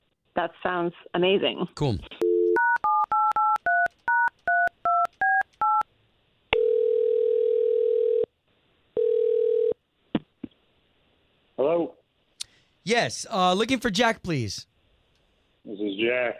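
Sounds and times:
speech: 0.4 - 2.2, 12.9 - 14.7, 16.0 - 16.3
dual-tone telephone keypad beeps dialing a number: 2.2 - 5.8
telephone ringing tones: 2.2 - 5.8, 6.6 - 8.3, 9.0 - 9.8.

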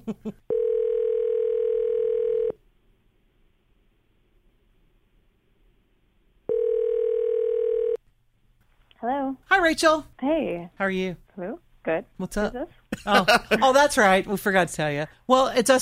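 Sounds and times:
laughter: 0.0 - 0.4, 13.0 - 13.9
speech: 0.1 - 0.5, 9.7 - 15.7
outgoing telephone call ring tones: 0.5 - 2.6, 6.5 - 8.0.

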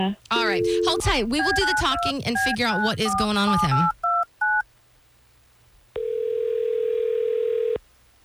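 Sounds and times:
speech: 0.0 - 4.0
telephone ring tone: 0.3 - 4.6, 6.0 - 7.8
keypad beep: 0.5 - 4.6.

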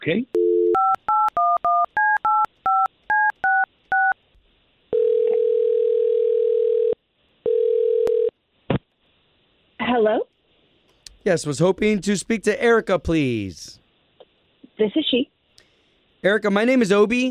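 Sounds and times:
speech: 0.0 - 0.4, 10.0 - 10.2, 11.2 - 13.8, 14.8 - 15.3, 16.2 - 17.2
telephone dial tone: 0.4 - 4.2, 5.0 - 8.3
telephone keypad beeps: 0.4 - 4.2.

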